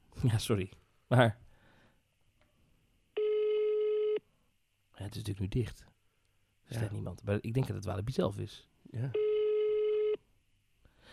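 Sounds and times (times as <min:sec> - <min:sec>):
speech: 0:00.2 - 0:01.4, 0:05.0 - 0:05.9, 0:06.7 - 0:09.2
telephone ringback tone during an outgoing phone call: 0:03.2 - 0:04.2, 0:09.2 - 0:10.2.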